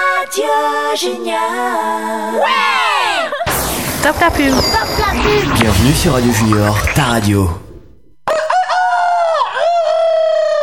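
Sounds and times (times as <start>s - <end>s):
speech: 0.3s - 2.8s, 4.0s - 7.6s
low rumble: 3.5s - 8.2s
rooster crowing: 8.3s - 10.6s.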